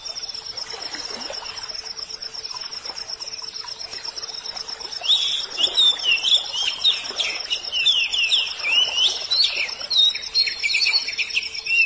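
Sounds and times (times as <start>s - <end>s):
Oriental magpie-robin song: 5.0s - 11.8s.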